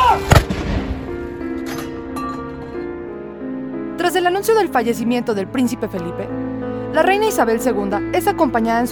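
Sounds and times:
deep booming artillery shot from a gun salute: 0.2s - 1.6s
speech: 4.1s - 8.9s.

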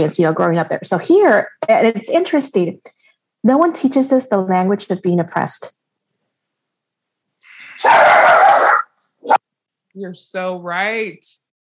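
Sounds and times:
speech: 0.0s - 5.8s, 10.0s - 11.4s
dog whining bark: 7.7s - 9.4s.

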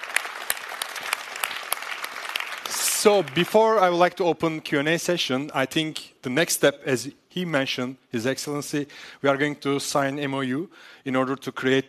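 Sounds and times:
audience applause after a speech: 0.0s - 3.8s
speech: 3.0s - 11.8s.

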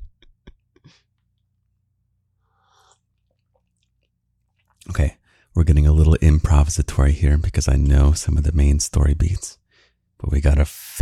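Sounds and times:
person sipping coffee: 2.4s - 4.9s
airy slurp: 2.6s - 4.9s
speech: 5.0s - 9.6s, 10.2s - 11.0s.

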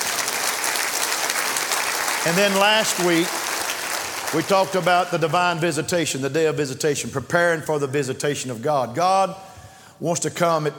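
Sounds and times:
congregation clapping their hands in applause: 0.0s - 5.4s
speech: 2.2s - 3.4s, 4.3s - 10.7s.

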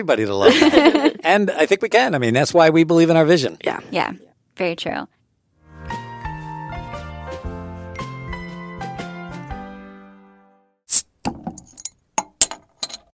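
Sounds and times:
speech: 0.0s - 5.2s
laughter: 0.4s - 1.4s
gentle melodic music: 5.6s - 10.6s.

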